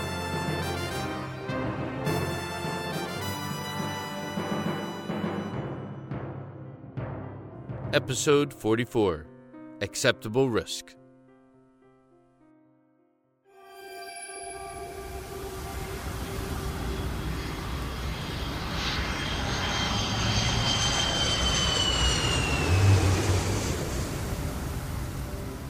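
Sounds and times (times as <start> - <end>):
airplane engine droning with sustained whine: 0.0 - 5.7, 14.1 - 25.6
speech: 7.9 - 11.0.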